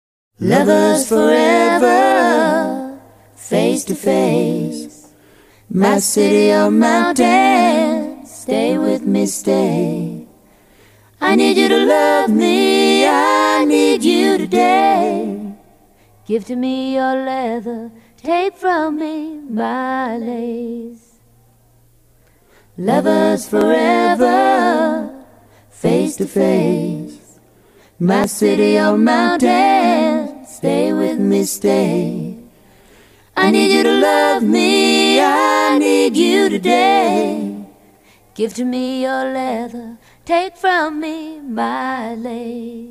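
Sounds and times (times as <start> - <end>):
a cappella duet chorus singing: 0.4 - 21.3, 22.5 - 42.8.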